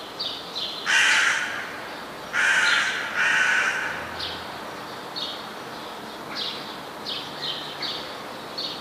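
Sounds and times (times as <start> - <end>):
rook cawing: 0.8 - 4.4.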